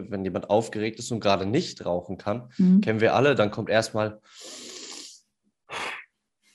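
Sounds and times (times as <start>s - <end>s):
speech: 0.0s - 4.7s
short sharp inhale through the mouth: 4.3s - 5.2s
person taking a deep breath exhaling to relax: 4.4s - 6.1s.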